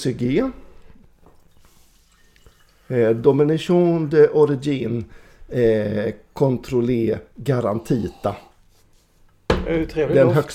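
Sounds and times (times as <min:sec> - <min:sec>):
speech: 0:00.0 - 0:00.6, 0:02.9 - 0:08.5, 0:09.6 - 0:10.5
wine pouring into a glass: 0:01.4 - 0:03.3.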